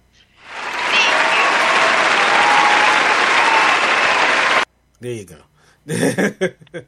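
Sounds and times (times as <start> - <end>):
audience applause: 0.4 - 4.7
speech: 5.0 - 6.8
laughter: 5.9 - 6.8.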